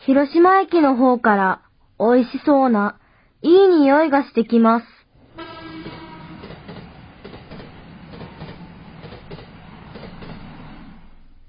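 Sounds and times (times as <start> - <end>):
speech: 0.1 - 5.0
streetcar in Hiroshima rumbling along its tracks: 5.2 - 11.4
streetcar wheels clacking over rail joints: 5.3 - 11.2.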